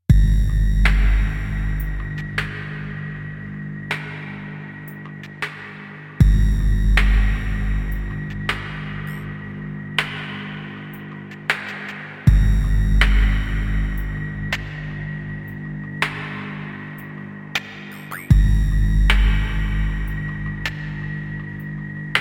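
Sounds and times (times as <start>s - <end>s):
Nord Drum 3P electronic drum: 0.1s - 2.4s, 6.2s - 9.2s, 12.3s - 14.2s, 17.9s - 20.3s.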